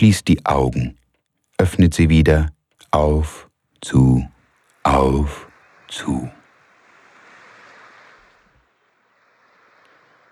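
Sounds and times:
speech: 0:00.0 - 0:01.0, 0:01.6 - 0:06.4
sea waves washing in at the shore: 0:02.9 - 0:10.3.

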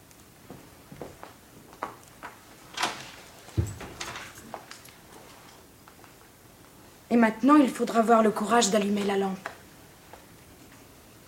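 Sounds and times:
faint knocks and rustles: 0:00.4 - 0:06.1
door closing in a staged drama scene: 0:02.7 - 0:04.6
speech: 0:07.1 - 0:09.5.

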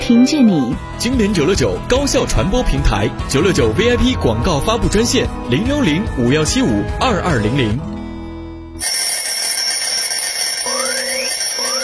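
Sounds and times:
speech: 0:00.1 - 0:07.9, 0:08.8 - 0:09.1
alarm clock ringing with a metallic jangle: 0:08.8 - 0:11.8.

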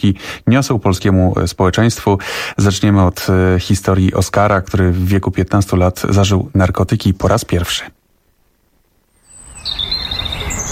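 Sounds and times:
speech: 0:00.0 - 0:08.0
steady hiss: 0:00.0 - 0:10.7
birds singing in a city park: 0:09.2 - 0:10.7.

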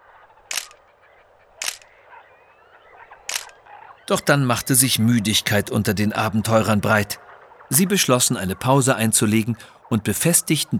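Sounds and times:
camera shutter clicks photographing trees and birds on a river journey: 0:00.5 - 0:00.8, 0:01.6 - 0:01.9, 0:03.3 - 0:03.6
laughter: 0:04.1 - 0:10.7
speech: 0:04.1 - 0:10.7.

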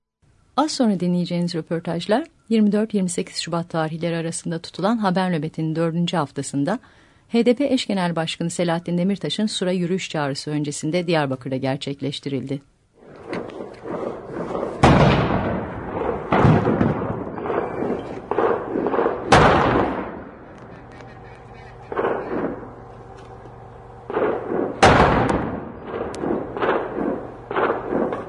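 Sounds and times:
low steady hum: 0:00.2 - 0:28.2
speech: 0:00.6 - 0:12.7
artillery cannon fire in a city: 0:13.0 - 0:20.5, 0:21.9 - 0:22.8, 0:24.1 - 0:28.2
explosions in a city: 0:13.0 - 0:20.5, 0:21.9 - 0:22.8, 0:24.1 - 0:28.2
laughter: 0:20.5 - 0:22.8.

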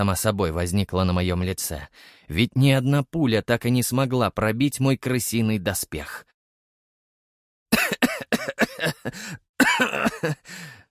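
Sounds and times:
speech: 0:00.0 - 0:06.3, 0:08.8 - 0:10.8
wounded man coughing up bloody spit: 0:07.7 - 0:10.8.

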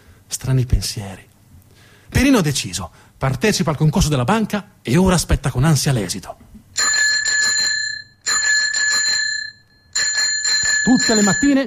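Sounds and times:
speech: 0:00.3 - 0:01.3, 0:02.1 - 0:06.4, 0:11.0 - 0:11.6
postman ringing his bicycle bell: 0:06.8 - 0:11.6.

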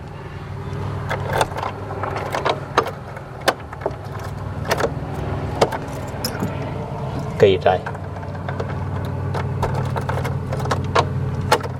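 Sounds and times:
steady low hum: 0:00.0 - 0:11.7
keys jangling in a hand: 0:04.0 - 0:07.4, 0:09.6 - 0:10.8
speech: 0:07.4 - 0:08.0.

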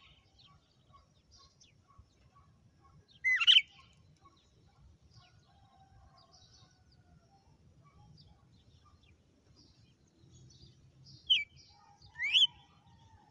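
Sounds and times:
female red-cowled cardinal giving loud sharp whistled notes: 0:03.3 - 0:03.7, 0:12.2 - 0:12.6.

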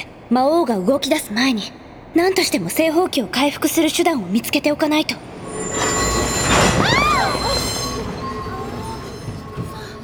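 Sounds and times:
speech: 0:00.3 - 0:06.0
heavy rolling rumble of a passenger train: 0:01.9 - 0:10.0
passenger train wheels squealing during an emergency stop: 0:04.6 - 0:10.0.

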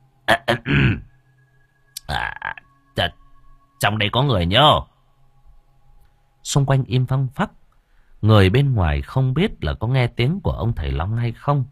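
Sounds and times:
man clearing his throat: 0:00.3 - 0:01.1
speech: 0:03.8 - 0:04.9, 0:06.5 - 0:07.6, 0:08.2 - 0:11.7.

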